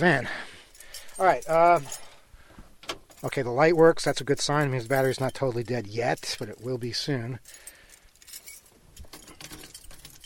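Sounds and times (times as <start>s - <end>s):
speech: 0.0s - 0.5s, 1.2s - 2.1s, 3.2s - 7.7s
bunch of van keys jangling: 0.7s - 2.2s, 4.0s - 10.2s.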